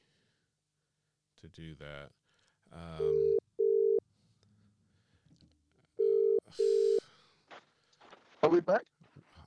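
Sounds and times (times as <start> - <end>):
faint noise: 0.0 - 9.4
speech: 1.4 - 3.4, 8.6 - 8.9
phone ringback tone while calling someone back: 3.0 - 4.0, 6.0 - 7.0.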